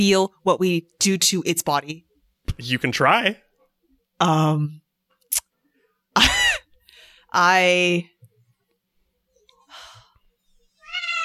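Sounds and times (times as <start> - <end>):
speech: 0.0 - 3.4, 4.2 - 5.4, 7.3 - 8.1
faint noise: 0.0 - 11.2
cat meowing angrily: 10.8 - 11.2.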